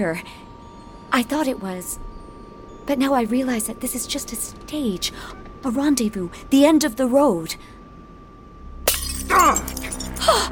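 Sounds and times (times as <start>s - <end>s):
speech: 0.0s - 0.4s, 1.1s - 2.1s, 2.9s - 7.8s
drinking glass shattering in hand: 8.9s - 10.4s
glass shards tinkling and scattering: 8.9s - 10.4s.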